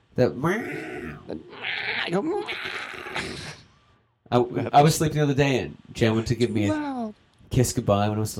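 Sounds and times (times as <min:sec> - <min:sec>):
speech: 0:00.2 - 0:03.6, 0:04.3 - 0:08.3
person on waking imitating a cat's screech: 0:00.6 - 0:03.6.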